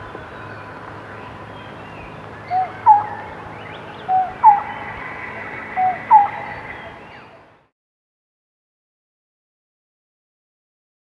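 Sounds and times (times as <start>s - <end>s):
Lineated barbet soft hooting notes: 0.0s - 7.5s
low background noise: 0.0s - 7.7s.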